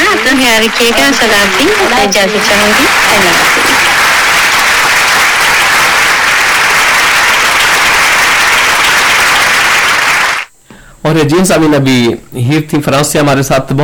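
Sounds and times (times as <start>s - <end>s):
audience applause: 0.0s - 10.5s
speech: 0.4s - 3.9s, 11.0s - 13.8s.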